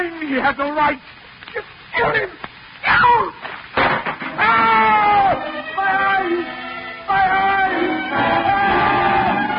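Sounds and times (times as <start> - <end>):
speech: 0.0 - 3.4
man screaming in agony with drawn-out anguished wails: 2.8 - 3.4, 4.4 - 9.4.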